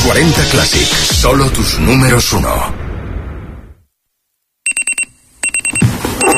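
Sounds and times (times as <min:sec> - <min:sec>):
speech: 0:00.1 - 0:02.8
electronic alarm clock beeping: 0:04.7 - 0:06.3.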